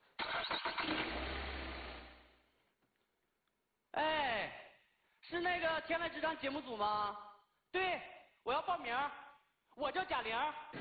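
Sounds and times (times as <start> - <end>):
car engine starting: 0.1 - 2.4
speech: 5.3 - 9.2, 9.8 - 10.7.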